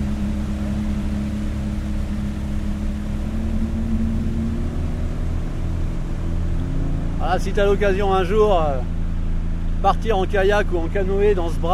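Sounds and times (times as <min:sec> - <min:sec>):
faint wash of water: 0:00.0 - 0:11.7
motorboat engine droning on a river arm with sandbanks: 0:00.0 - 0:11.7
speech: 0:07.3 - 0:09.0, 0:09.8 - 0:11.7.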